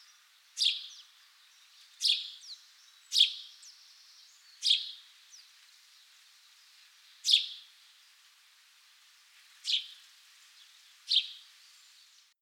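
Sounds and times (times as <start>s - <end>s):
house sparrow Passer domesticus chirping: 0.0s - 5.5s, 7.2s - 7.7s, 9.6s - 10.0s, 10.7s - 11.6s.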